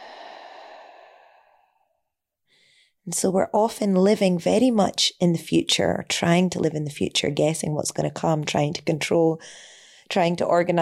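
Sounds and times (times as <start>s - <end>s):
long audible exhale during a guided meditation: 0.0s - 1.9s
speech: 3.1s - 10.8s.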